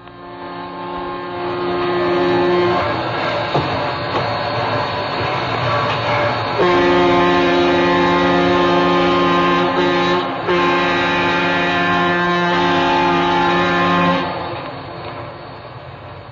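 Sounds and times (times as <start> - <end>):
powerful diesel locomotive engine rumbling: 0.0 - 16.3
diesel locomotive multi-tone horn blasts: 0.1 - 3.0, 5.7 - 14.4.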